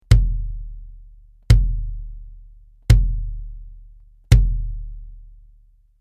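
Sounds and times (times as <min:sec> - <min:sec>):
hard plastic bass hit: 0:00.0 - 0:00.7, 0:01.5 - 0:02.2, 0:02.9 - 0:03.6, 0:04.3 - 0:05.0.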